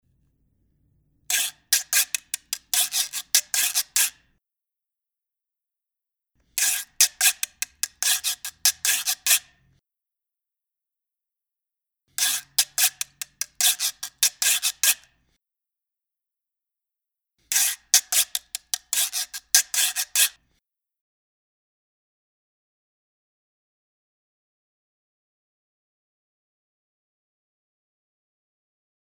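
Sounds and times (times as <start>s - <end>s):
reco reco scraper: 1.3s - 4.3s, 6.6s - 9.6s, 12.2s - 15.1s, 17.5s - 20.4s.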